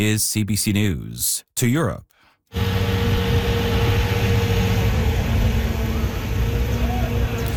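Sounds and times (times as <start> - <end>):
speech: 0.0 - 2.9
heavy municipal water truck engine rumbling in Prague: 2.5 - 7.5.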